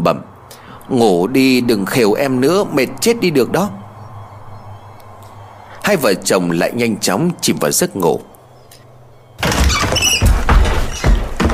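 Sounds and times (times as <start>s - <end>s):
speech: 0.0s - 0.3s, 0.9s - 3.8s, 5.8s - 8.3s
strong wind rushing: 0.2s - 11.3s
heavy knocking thuds of a window shutter: 9.4s - 11.5s
window bursting open in a strong wind: 9.4s - 11.5s
window hinges squealing and creaking: 9.4s - 11.5s.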